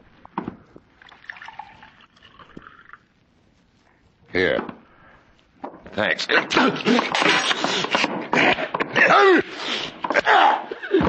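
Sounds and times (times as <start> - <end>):
water pouring from a carafe into a glass: 1.0 - 3.0
speech: 4.4 - 4.8, 6.0 - 11.0.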